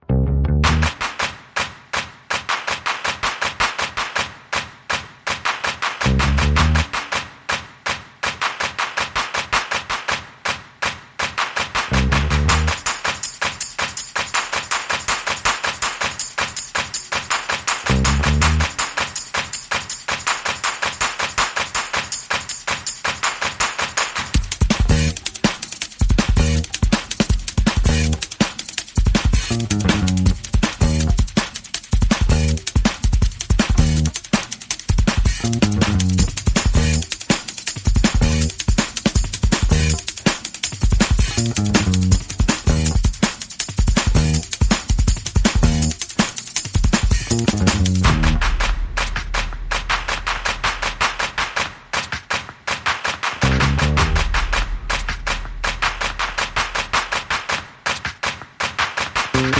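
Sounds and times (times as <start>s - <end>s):
bass: 0.0s - 1.0s, 6.0s - 7.0s, 11.8s - 12.8s, 17.9s - 18.8s, 24.4s - 25.4s, 26.2s - 28.3s, 29.1s - 31.4s, 32.1s - 34.2s, 35.3s - 37.2s, 38.0s - 40.2s, 41.2s - 43.2s, 44.0s - 46.1s, 47.1s - 51.3s, 53.4s - 57.2s, 59.4s - 59.5s
percussion: 0.2s - 59.5s
claps: 0.6s - 59.5s.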